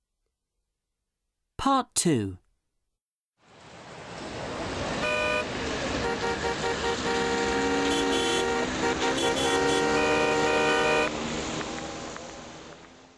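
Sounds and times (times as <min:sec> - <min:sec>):
speech: 0:01.6 - 0:02.4, 0:09.2 - 0:09.8
dense night street traffic in Delhi India: 0:03.4 - 0:13.1
engines rumbling in Delhi street traffic: 0:03.5 - 0:13.1
car horns honking in Delhi street traffic: 0:05.0 - 0:11.1.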